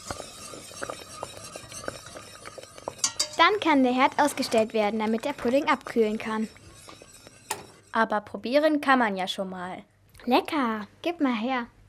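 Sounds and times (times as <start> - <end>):
spoon scraping and clinking on a pot while stirring pudding: 0.0 - 8.0
speech: 3.4 - 6.6, 8.0 - 11.8.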